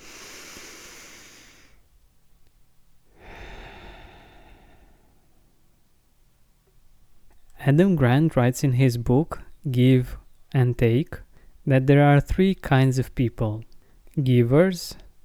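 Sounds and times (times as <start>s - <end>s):
deep breath in and out: 0.0s - 1.9s, 3.1s - 5.8s
speech: 7.6s - 15.0s.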